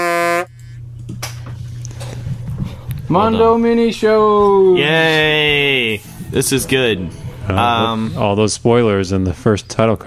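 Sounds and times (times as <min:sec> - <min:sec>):
loud blaring honk used as a start signal: 0:00.0 - 0:00.8
low steady hum: 0:00.0 - 0:10.0
speech: 0:03.1 - 0:10.0.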